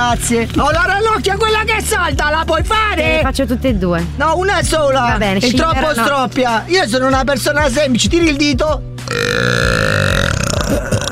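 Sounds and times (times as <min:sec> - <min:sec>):
speech: 0:00.0 - 0:09.8
long loud burp: 0:09.0 - 0:11.0.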